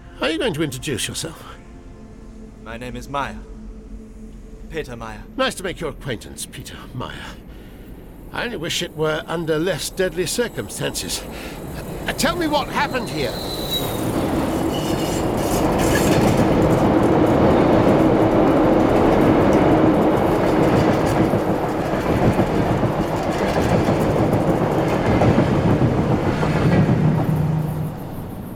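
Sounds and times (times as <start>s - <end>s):
passenger train rumbling along the rails: 0.0s - 28.5s
speech: 0.2s - 1.6s, 2.6s - 3.5s, 4.7s - 7.5s, 8.3s - 13.6s
passenger train wheels clattering clickety-clack: 8.7s - 28.5s
faint train wheel squeal: 12.8s - 15.3s.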